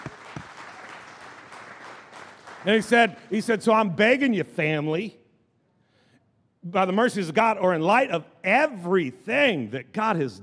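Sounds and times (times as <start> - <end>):
audience clapping: 0.0 - 3.5
speech: 2.6 - 5.2, 6.6 - 10.4.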